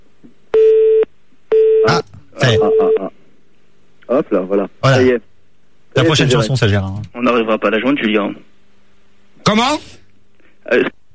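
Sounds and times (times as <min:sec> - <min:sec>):
call-waiting beeps on a radio studio phone line: 0:00.6 - 0:03.1
speech: 0:02.0 - 0:02.8, 0:04.2 - 0:05.3, 0:06.0 - 0:08.5, 0:09.5 - 0:10.0, 0:10.7 - 0:11.0.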